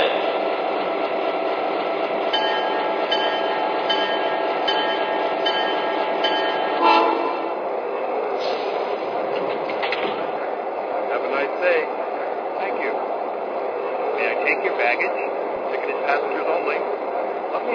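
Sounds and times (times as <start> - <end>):
passenger train rumbling at a station platform: 0.0 - 17.7.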